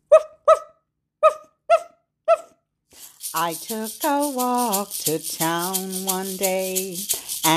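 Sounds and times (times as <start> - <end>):
dog barking in short sharp woofs: 0.0 - 2.6
speech: 3.3 - 7.5.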